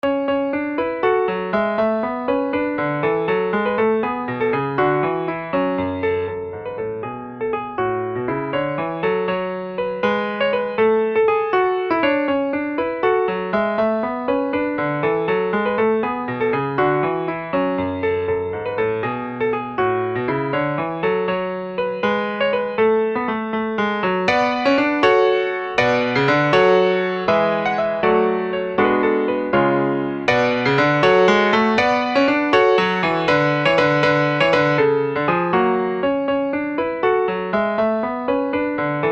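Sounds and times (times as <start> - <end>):
piano playing a forlane: 0.0 - 39.1.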